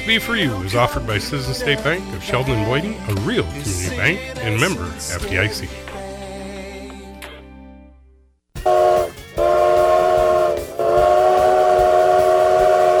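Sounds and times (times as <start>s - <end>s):
speech: 0.0s - 6.0s
train arriving and rumbling: 8.6s - 12.9s.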